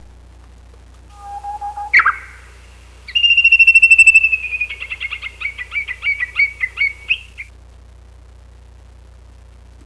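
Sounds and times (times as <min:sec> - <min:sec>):
Japanese bush warbler song: 0:01.1 - 0:07.5.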